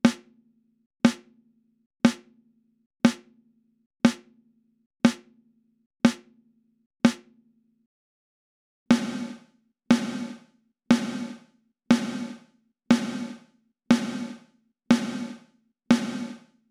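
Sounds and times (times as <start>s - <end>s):
dry snare drum with gated reverb: 0.0s - 0.2s, 3.1s - 3.3s, 5.1s - 5.3s, 6.1s - 6.3s, 8.9s - 16.6s.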